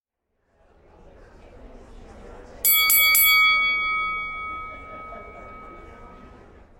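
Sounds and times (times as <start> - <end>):
low murmur: 0.3 - 6.7
boxing ring bell gong ringing: 2.7 - 6.4.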